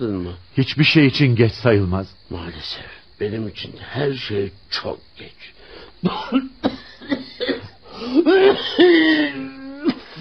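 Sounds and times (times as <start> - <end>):
speech: 0.0 - 7.2
man coughing in a rough hacking fit: 6.0 - 10.1
strained wheezing vocal sounds: 7.7 - 10.1.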